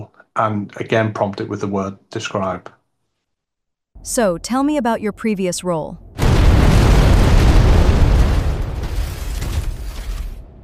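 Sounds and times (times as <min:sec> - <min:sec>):
speech: 0:00.4 - 0:02.8, 0:04.0 - 0:06.0
loud explosion with deep booming rumble: 0:06.0 - 0:10.6
broadband debris noise: 0:06.2 - 0:10.6.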